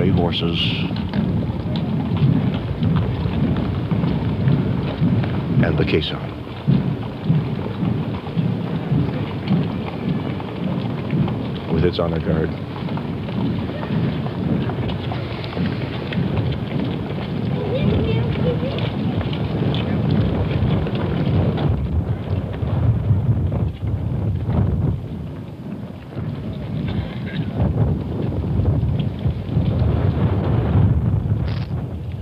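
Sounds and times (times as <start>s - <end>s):
cold wind whipping down an avenue: 0.0s - 32.2s
speech: 0.2s - 1.2s, 5.6s - 6.4s, 11.8s - 12.7s.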